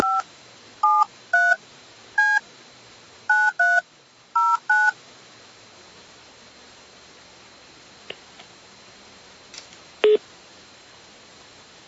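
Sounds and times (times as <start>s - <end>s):
telephone keypad dual-tone dialing beeps: 0.0s - 0.2s, 0.8s - 1.6s, 3.3s - 3.8s, 4.4s - 4.9s
faint steady hiss: 0.0s - 11.8s.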